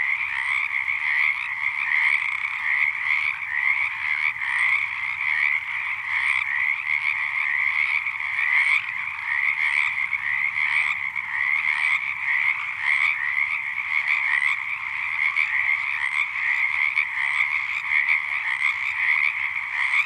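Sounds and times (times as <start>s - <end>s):
frog chorus of many overlapping pulsed trills: 0.0s - 20.0s.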